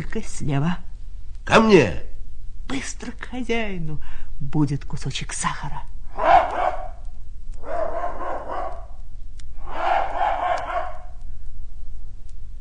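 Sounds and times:
speech: 0.0s - 0.9s, 1.5s - 2.1s, 2.7s - 6.4s
low steady hum: 0.0s - 12.5s
hunting dog barking and yowling: 6.1s - 7.0s, 7.6s - 9.0s, 9.6s - 11.2s.

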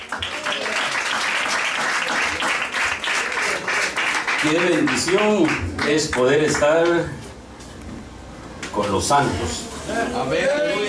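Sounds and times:
congregation applauding: 0.0s - 7.0s
speech: 4.4s - 7.2s, 8.8s - 10.8s.

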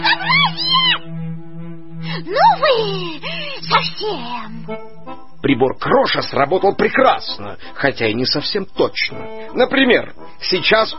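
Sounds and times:
shrill scream: 0.0s - 1.0s
speech: 2.2s - 10.9s.

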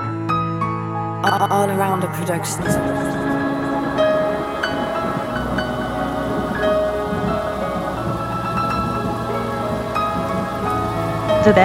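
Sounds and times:
sustained musical tones: 0.1s - 11.6s
speech: 1.3s - 3.4s, 11.4s - 11.6s
steady rain with a low rumbling undertone: 2.7s - 11.6s.

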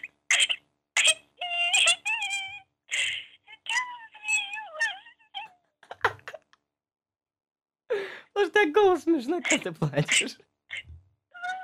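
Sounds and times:
person crying and sobbing with wavering wails: 1.2s - 6.5s
speech: 8.6s - 10.5s.

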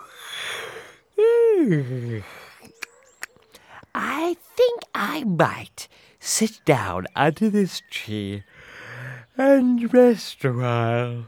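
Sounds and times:
long hard voiced yawn with breathy inhale: 0.0s - 2.7s
speech: 1.6s - 2.4s, 4.2s - 8.6s, 9.4s - 11.2s.

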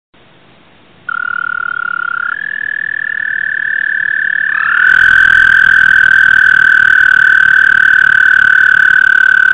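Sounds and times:
American toad trills: 1.1s - 9.5s.

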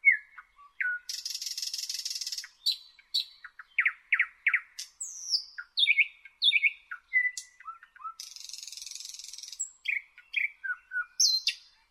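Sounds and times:
Thrush nightingale Luscinia luscinia song: 0.0s - 11.8s.

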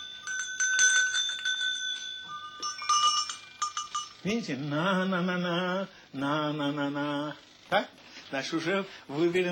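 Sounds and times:
several small ram bells jingling and clanging: 0.0s - 5.7s
speech: 4.2s - 9.4s.

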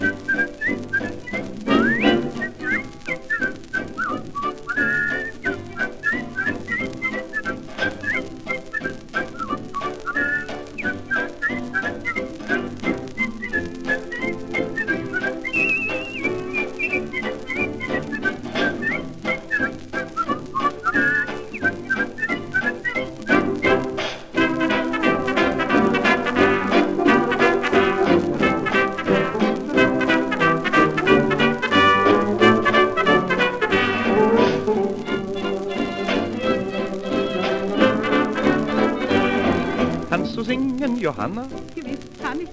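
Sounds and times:
person whistling a lively melody: 0.0s - 23.8s
instrumental accompaniment: 0.0s - 42.5s
speech: 41.2s - 41.7s.

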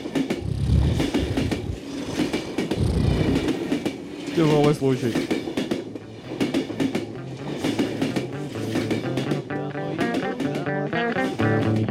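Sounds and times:
train wheels clattering over rail joints: 0.0s - 11.8s
steady heavy low rumble of a moving train: 0.4s - 1.8s, 2.8s - 3.4s
speech: 4.4s - 5.4s.

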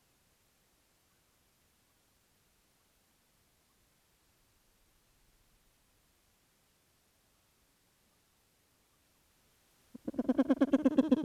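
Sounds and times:
grey petrel call: 10.0s - 11.2s.

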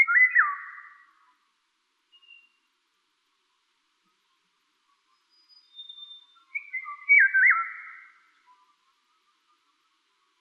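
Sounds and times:
Eurasian golden oriole Oriolus oriolus singing flute-like phrases: 0.0s - 1.2s, 2.1s - 2.7s, 5.2s - 8.7s.

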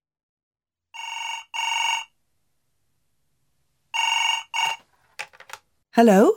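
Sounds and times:
telephone ringing: 1.0s - 2.2s, 4.0s - 4.9s
speech: 6.0s - 6.3s.

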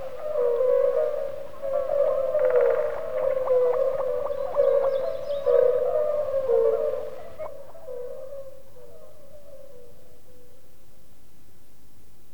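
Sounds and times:
European fire-bellied toads chorus in flood pools beside a river island, central Russia: 0.0s - 9.6s.

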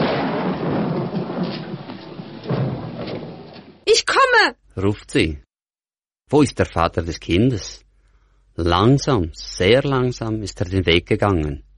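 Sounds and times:
loud rumbling thunder crash: 0.0s - 3.8s
speech: 3.9s - 5.4s, 6.3s - 7.8s, 8.6s - 11.6s.

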